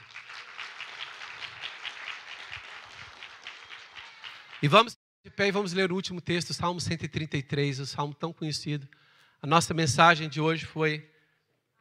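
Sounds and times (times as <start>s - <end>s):
crowd applauding: 0.0s - 4.9s
speech: 4.6s - 11.2s.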